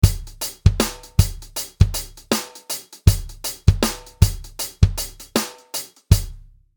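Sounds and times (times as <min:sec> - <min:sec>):
shuffle drum beat played by a drummer: 0:00.0 - 0:06.4.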